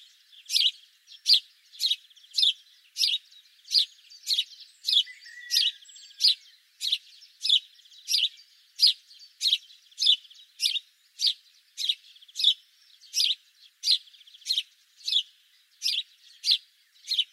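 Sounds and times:
house sparrow calls: 0.0s - 17.3s.

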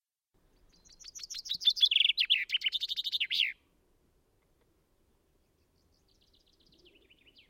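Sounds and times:
common chaffinch Fringilla coelebs song: 0.4s - 3.7s, 5.2s - 7.4s.

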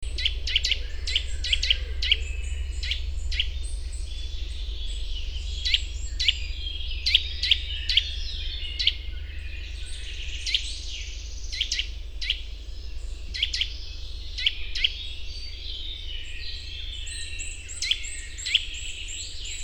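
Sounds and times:
Eurasian nuthatch Sitta europaea calling: 0.0s - 19.6s
constant low hum: 0.0s - 19.6s.

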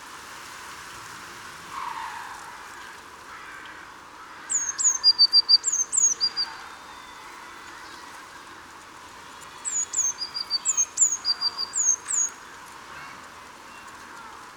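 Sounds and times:
low background hiss: 0.0s - 14.5s
Eurasian blue tit Cyanistes caeruleus calling: 4.5s - 6.5s, 9.6s - 12.5s.

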